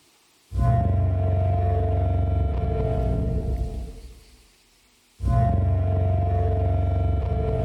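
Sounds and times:
computer simulated Parasaurolophus dinosaur crest call: 0.6s - 3.9s, 5.2s - 7.6s.

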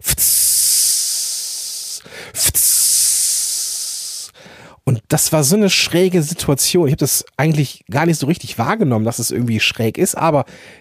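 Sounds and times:
voice imitating the sizzle of meat on a grill: 0.0s - 4.3s
speech: 5.1s - 10.8s.

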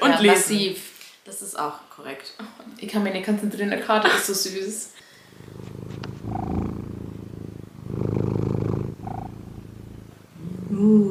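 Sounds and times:
speech: 0.2s - 6.4s, 10.8s - 11.0s
male cat purring: 5.2s - 11.0s.

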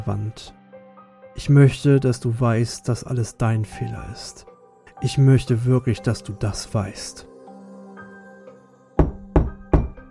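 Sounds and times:
speech: 0.0s - 0.6s, 1.4s - 7.3s
heavy knocks on a solid surface: 9.0s - 10.0s.

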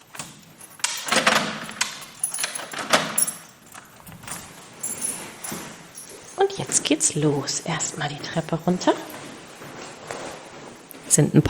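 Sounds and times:
key clicking in a door lock as a door is locked: 0.0s - 6.3s
keys jangling: 0.0s - 10.5s
speech: 6.5s - 9.1s, 11.1s - 11.4s.

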